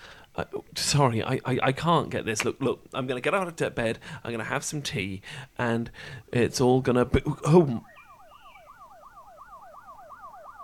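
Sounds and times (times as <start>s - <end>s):
speech: 0.4s - 7.9s
police sirens wailing in a fast yelp: 7.8s - 10.6s.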